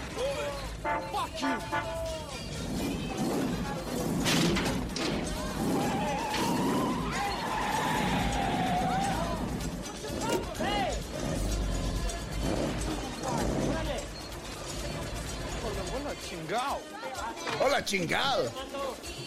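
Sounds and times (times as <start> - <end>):
engine noise and rumbling: 0.0 - 16.5
metal scraping: 0.4 - 16.6
speech: 0.8 - 2.8, 17.6 - 18.8
car slamming into a parked car with crunching metal impact: 3.4 - 11.4.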